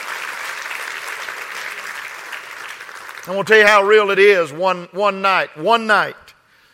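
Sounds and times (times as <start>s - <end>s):
large audience clapping hands: 0.0s - 4.0s
speech: 3.2s - 6.3s.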